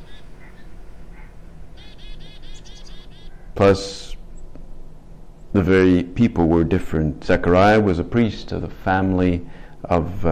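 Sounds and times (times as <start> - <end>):
chickadees chirping: 0.0 - 4.6
steady low hum: 0.0 - 10.2
speech: 3.6 - 4.0, 5.6 - 10.2.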